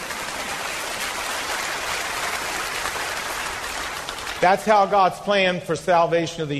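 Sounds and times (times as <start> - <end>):
congregation applauding: 0.0 - 5.0
speech: 4.4 - 6.5.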